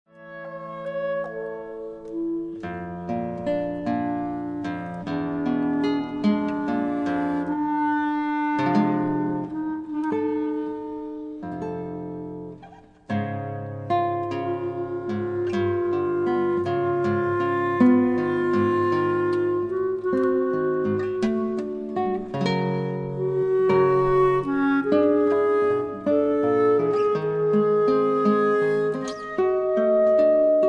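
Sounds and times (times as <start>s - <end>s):
clarinet: 0.1s - 30.6s
guitar: 0.1s - 30.6s.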